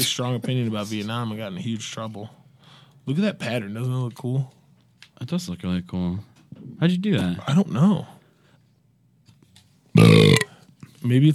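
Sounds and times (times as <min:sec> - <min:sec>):
speech: 0:00.0 - 0:02.4, 0:03.1 - 0:04.6, 0:05.2 - 0:08.2, 0:10.0 - 0:10.3, 0:11.0 - 0:11.3
loud drawn-out burp: 0:10.0 - 0:10.6.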